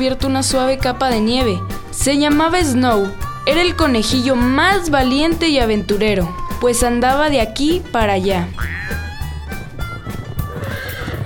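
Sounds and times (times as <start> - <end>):
speech: 0.0 - 8.8
hooves shuffling: 0.0 - 11.2
horse whinnying: 8.6 - 11.2.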